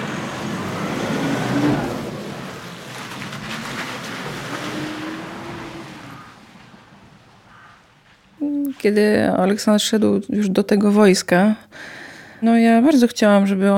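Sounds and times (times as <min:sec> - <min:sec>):
car engine rumbling as car drives out of a garage: 0:00.0 - 0:08.6
speech: 0:08.8 - 0:13.7.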